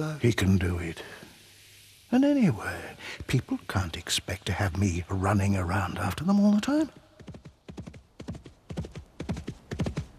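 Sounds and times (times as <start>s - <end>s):
speech: 0.0s - 1.2s, 2.1s - 7.4s
horse hooves cantering: 6.5s - 10.1s.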